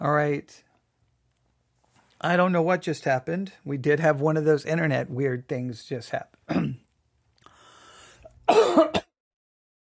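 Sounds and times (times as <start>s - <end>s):
speech: 0.0s - 0.7s, 2.2s - 6.8s, 8.5s - 9.0s
person coughing: 6.5s - 6.8s, 8.5s - 9.1s.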